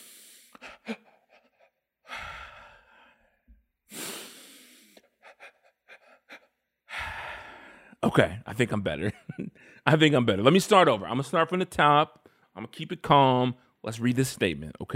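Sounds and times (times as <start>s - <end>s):
sniffs: 0.0s - 0.9s, 3.9s - 6.5s
deep breathing to calm down: 0.0s - 8.0s, 9.5s - 9.9s
speech: 8.0s - 14.9s.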